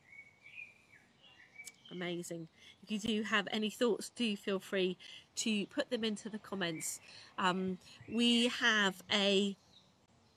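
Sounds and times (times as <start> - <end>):
birds singing in the morning: 0.0 - 3.5, 5.0 - 10.3
speech: 1.9 - 9.6.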